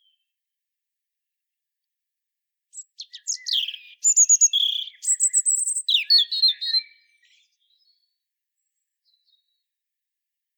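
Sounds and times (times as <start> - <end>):
European robin (Erithacus rubecula) song: 2.7 - 8.2.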